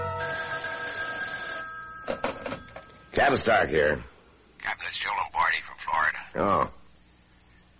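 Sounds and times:
old-style telephone bell ringing: 0:00.2 - 0:03.3
speech: 0:03.2 - 0:05.6, 0:06.3 - 0:06.8.

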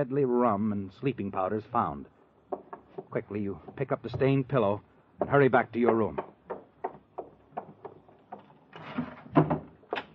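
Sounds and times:
speech: 0:00.0 - 0:02.2, 0:03.1 - 0:06.3
old wooden bureau drawer scraping open and shut: 0:08.4 - 0:10.1.

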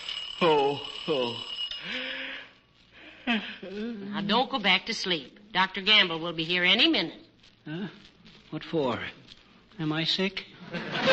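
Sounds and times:
alarm clock ringing: 0:00.0 - 0:02.6
speech: 0:00.4 - 0:02.0, 0:03.3 - 0:11.1
laughter: 0:10.6 - 0:11.1.

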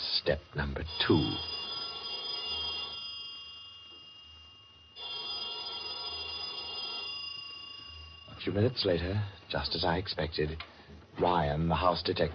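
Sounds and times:
speech: 0:00.2 - 0:01.5, 0:08.4 - 0:12.3
telephone ringing with bright electronic tone: 0:00.4 - 0:10.0.

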